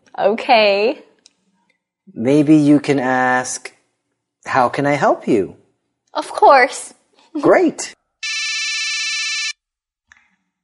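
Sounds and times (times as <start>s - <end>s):
speech: 0.2s - 1.1s, 2.1s - 3.8s, 4.4s - 8.0s
electronic telephone ringing: 8.2s - 9.6s.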